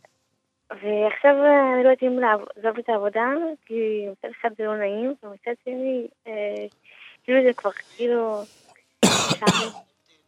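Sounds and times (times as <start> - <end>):
speech: 0.7 - 9.9
person coughing: 9.0 - 9.8.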